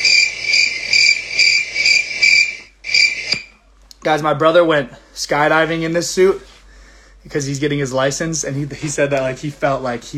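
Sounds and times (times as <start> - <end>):
crickets chirping in a dense pulsing chorus: 0.0 - 3.5
speech: 4.0 - 6.5, 7.2 - 10.1.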